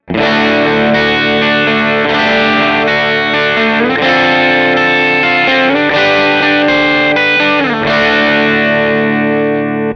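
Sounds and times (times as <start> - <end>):
electric guitar through AC Box amplifier: 0.0 - 9.9.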